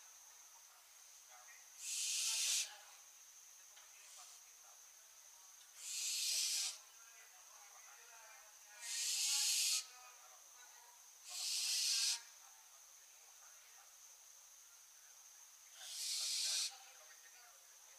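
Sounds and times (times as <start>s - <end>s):
Barn owl Tyto alba making rasping breathy screeches: 1.8s - 2.7s, 5.8s - 6.8s, 8.8s - 9.9s, 11.3s - 12.3s, 15.7s - 16.7s.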